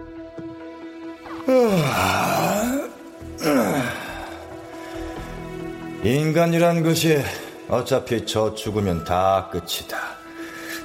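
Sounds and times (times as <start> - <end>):
person yawning with a groaning pitch: 1.3 - 4.5
speech: 1.5 - 2.3, 6.0 - 10.2.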